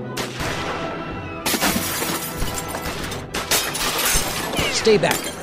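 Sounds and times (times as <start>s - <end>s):
barrage of gunshots fired into a house: 0.2s - 3.6s
glass shattering: 1.5s - 5.3s
speech: 4.8s - 5.3s.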